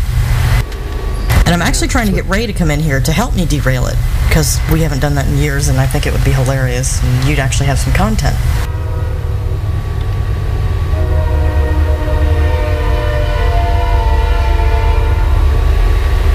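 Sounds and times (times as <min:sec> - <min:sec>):
train rumbling past: 0:00.0 - 0:16.3
speech: 0:01.5 - 0:08.7
long sustained multi-tone train horn blaring: 0:08.4 - 0:16.3.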